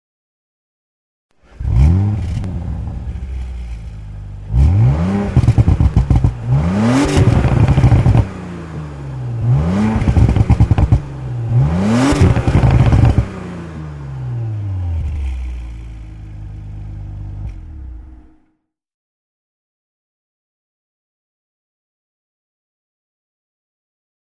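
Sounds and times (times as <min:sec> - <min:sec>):
Audi RS5 engine: 0:01.3 - 0:18.5.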